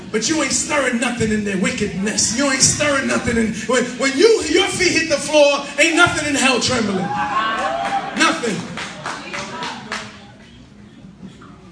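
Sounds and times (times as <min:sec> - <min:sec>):
low murmur of voices: 0:00.0 - 0:11.7
speech: 0:00.1 - 0:07.7
audience clapping: 0:07.6 - 0:10.3.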